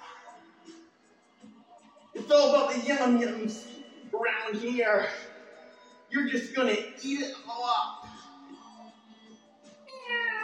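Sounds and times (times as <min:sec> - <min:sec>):
speech: 0:02.3 - 0:05.2, 0:06.1 - 0:08.0
cat meowing: 0:09.9 - 0:10.4.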